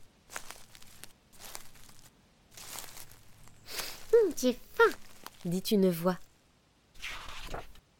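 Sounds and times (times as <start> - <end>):
footsteps crunching dry leaves: 0.0 - 6.3
speech: 4.2 - 6.2.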